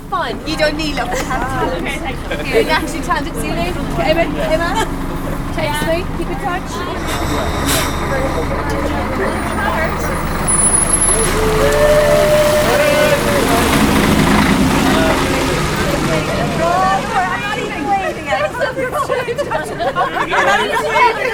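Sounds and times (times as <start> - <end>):
indistinct voices murmuring: 0.0 - 21.3
large bus engine rumbling and pulling away on a frosty morning: 0.0 - 21.3
speech: 0.1 - 5.0, 5.6 - 10.4, 11.1 - 13.4, 18.6 - 21.3
laughter: 0.2 - 21.3
bus air brakes hissing: 6.6 - 14.2.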